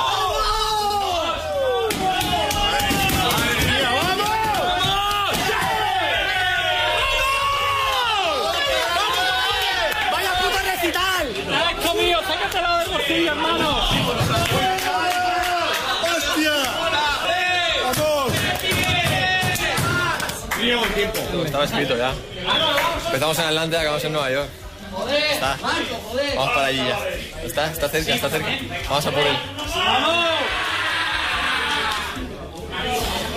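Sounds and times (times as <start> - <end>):
football team men shouting, whooping, chanting and cheering in dressing room after a win: 0.0 - 20.8, 29.2 - 32.6
speech: 21.4 - 30.6.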